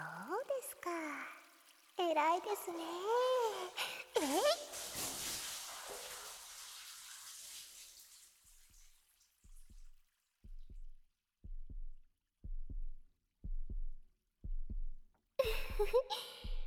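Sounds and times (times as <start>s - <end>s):
speech: 2.0s - 4.8s
heartbeat heard through a chest: 9.5s - 16.6s.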